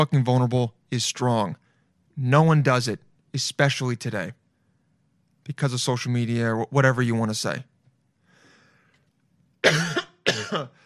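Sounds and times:
speech: 0:00.0 - 0:01.6, 0:02.2 - 0:04.4, 0:05.5 - 0:07.7, 0:09.6 - 0:10.8
harsh raspy coughs: 0:09.6 - 0:10.8.

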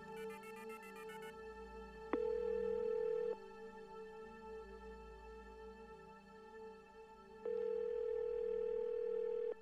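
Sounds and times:
telephone dial tone beeps from redialing: 0:02.2 - 0:03.4, 0:07.5 - 0:09.6.

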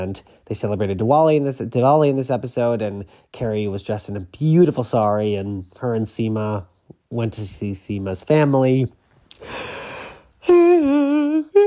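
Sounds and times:
speech: 0:00.0 - 0:09.8
single loud yawn: 0:09.4 - 0:11.6.

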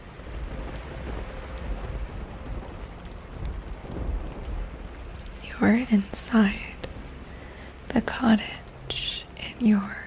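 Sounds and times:
low distant thunder rumbling: 0:00.0 - 0:10.0
rain pattering: 0:00.0 - 0:10.0
speech: 0:05.6 - 0:06.7, 0:07.9 - 0:10.0.

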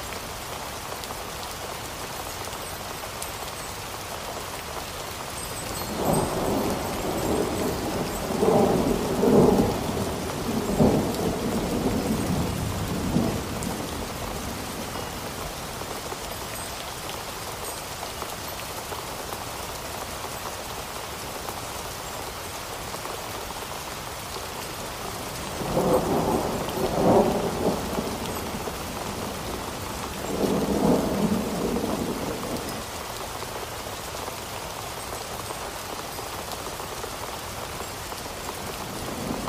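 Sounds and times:
steady even rain in a storm: 0:00.0 - 0:39.4
low rolling thunder: 0:05.9 - 0:14.9, 0:25.4 - 0:32.8.

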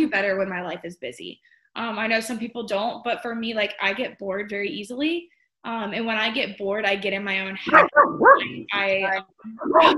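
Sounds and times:
speech: 0:00.1 - 0:09.9
puppy barking and yelping: 0:07.7 - 0:08.7, 0:09.7 - 0:09.9.

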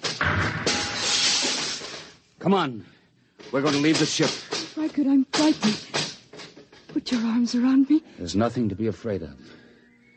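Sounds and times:
spaceship viewport glass shattering as it is smashed: 0:00.0 - 0:02.2
speech: 0:02.4 - 0:06.0, 0:07.0 - 0:09.5.

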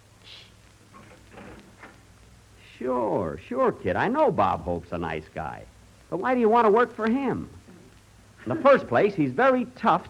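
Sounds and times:
door scraping and creaking as it swings: 0:00.9 - 0:02.0
speech: 0:02.8 - 0:07.6, 0:08.4 - 0:10.0.

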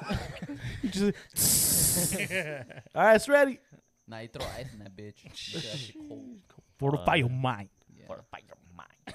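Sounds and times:
speech: 0:00.8 - 0:08.6
person's breathy hiss imitating boiling water being poured: 0:01.2 - 0:02.5, 0:05.3 - 0:06.2.

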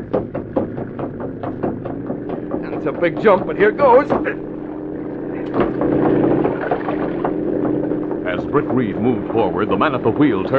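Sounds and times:
boat engine droning: 0:00.0 - 0:10.5
speech: 0:00.1 - 0:00.4, 0:02.8 - 0:04.5, 0:08.5 - 0:10.5
rushing wash of water: 0:01.9 - 0:10.5.

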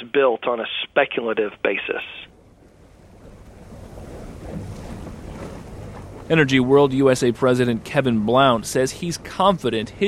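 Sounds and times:
boat engine and water rumble on open water at Port Fourchon: 0:00.0 - 0:10.0
speech: 0:00.1 - 0:02.3, 0:06.3 - 0:10.0
gusty wind buffeting the microphone: 0:02.3 - 0:10.0.

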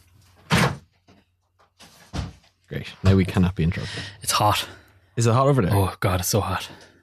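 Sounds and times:
door shutting with a thump: 0:00.4 - 0:00.9
speech: 0:02.7 - 0:06.9.

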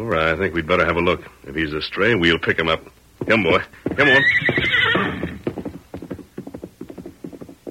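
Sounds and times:
horse hooves clip-clopping: 0:00.0 - 0:01.3, 0:02.2 - 0:07.6
speech: 0:00.0 - 0:04.8
horse giving a loud shrill whinny: 0:04.0 - 0:05.5.

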